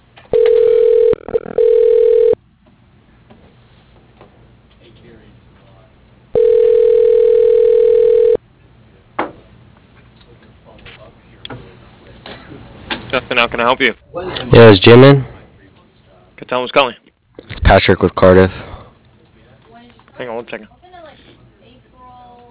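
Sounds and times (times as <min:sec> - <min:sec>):
telephone ringback tones through a company's automated line: 0:00.3 - 0:02.4, 0:06.4 - 0:08.4
speech: 0:13.4 - 0:15.3, 0:16.5 - 0:17.0, 0:17.7 - 0:18.6.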